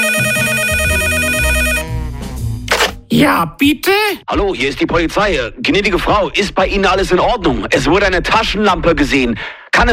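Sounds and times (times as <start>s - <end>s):
telephone ringing with electronic bell tone at a neighbor's home: 0.0s - 1.9s
speech: 3.2s - 9.9s.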